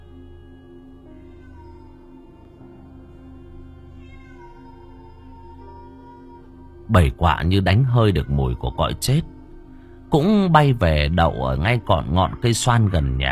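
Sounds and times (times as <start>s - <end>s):
feral cat yowling outside: 1.1s - 9.5s
speech: 6.9s - 9.3s, 10.1s - 13.3s.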